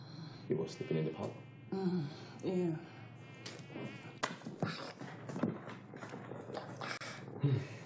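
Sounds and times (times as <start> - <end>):
mosquito buzzing: 0.0 - 5.4
speech: 0.5 - 3.0, 3.7 - 5.0, 7.4 - 7.8.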